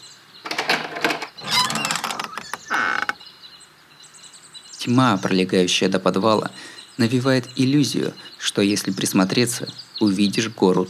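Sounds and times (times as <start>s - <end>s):
door of a cube in a forest creaking open: 0.4s - 3.2s
speech: 4.8s - 10.8s.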